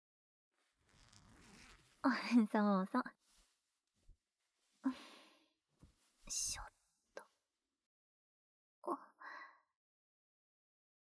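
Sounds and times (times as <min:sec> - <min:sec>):
zipper on the back of a dress unzipped: 0:00.7 - 0:02.1
speech: 0:02.0 - 0:03.2, 0:04.8 - 0:05.1, 0:06.3 - 0:06.7.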